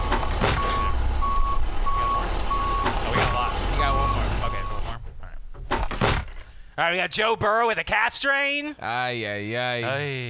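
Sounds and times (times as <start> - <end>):
electronic beeps from a truck backing up: 0.0 - 5.0
low truck engine rumble: 0.0 - 5.6
speech: 6.8 - 10.2.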